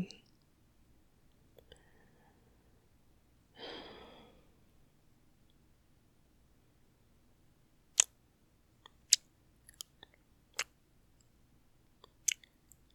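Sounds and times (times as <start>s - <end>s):
faint hiss: 0.0s - 12.9s
soft airy breath: 1.6s - 2.9s, 3.6s - 4.7s.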